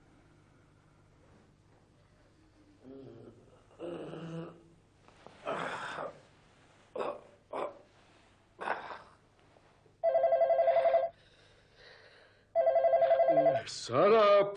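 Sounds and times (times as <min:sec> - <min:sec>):
breathy vocal noises like gasps or snorts: 0:02.6 - 0:04.7, 0:05.4 - 0:06.2, 0:08.6 - 0:09.2
telephone ringing in electronic bursts: 0:10.0 - 0:11.2, 0:12.6 - 0:13.7
speech: 0:13.9 - 0:14.5.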